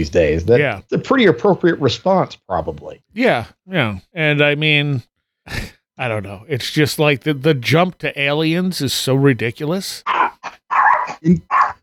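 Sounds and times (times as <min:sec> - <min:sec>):
speech: 0:00.0 - 0:11.8
dog barking: 0:10.1 - 0:11.8.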